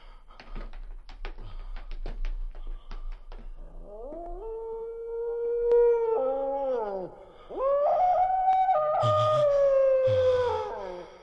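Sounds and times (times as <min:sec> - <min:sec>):
dog howling and whimpering: 0:03.8 - 0:11.1.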